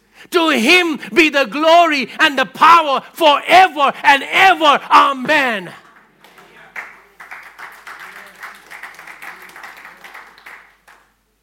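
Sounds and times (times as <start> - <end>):
speech: 0.2 - 5.8
audience applauding after a sermon: 5.8 - 11.2.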